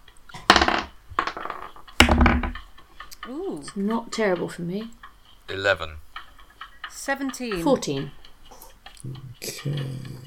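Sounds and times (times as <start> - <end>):
dice rolled on a table for initiative in a tabletop role-playing game: 0.4 - 2.8
speech: 3.3 - 6.0, 6.9 - 8.2, 9.0 - 10.2.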